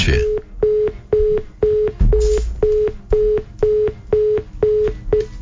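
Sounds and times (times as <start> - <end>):
speech: 0.1 - 0.3
telephone line tone after a dropped call: 0.3 - 5.3.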